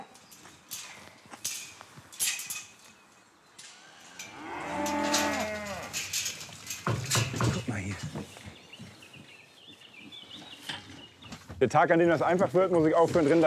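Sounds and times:
knocks and shuffling: 0.0s - 13.4s
nine-year-old lead cow mooing on a farm: 4.2s - 6.0s
speech: 11.6s - 13.4s.

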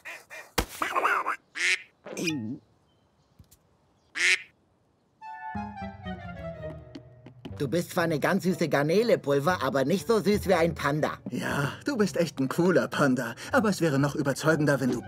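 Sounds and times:
duck quacking: 0.8s - 2.3s, 4.2s - 4.5s
speech: 2.2s - 2.7s, 7.6s - 15.0s.

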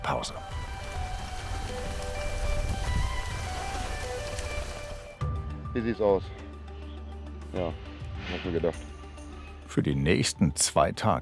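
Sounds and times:
rain pattering on a surface: 0.0s - 5.2s
speech: 0.2s - 0.6s, 5.8s - 6.4s, 7.6s - 8.9s, 9.8s - 11.1s.

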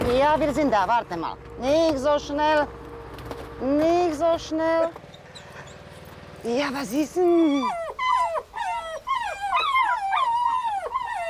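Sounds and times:
speech: 0.1s - 2.8s, 3.6s - 5.0s, 6.4s - 7.8s
puppies whining and yelping as they greet an older dog: 4.8s - 6.0s, 7.4s - 11.2s.

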